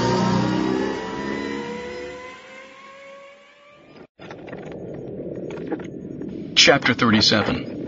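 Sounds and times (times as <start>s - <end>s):
engine revving as throttle is squeezed and vehicle speeds off: 0.0s - 4.1s
speech: 6.6s - 7.7s.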